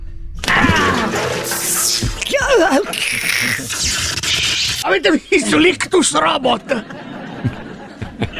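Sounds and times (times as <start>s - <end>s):
bucket of water being thrown: 0.4s - 3.8s
crackling crashing noise: 0.4s - 4.8s
laughter: 0.5s - 4.1s, 5.4s - 8.3s
warbling wavering tone: 0.5s - 4.8s
speech: 2.4s - 4.2s, 4.8s - 7.6s.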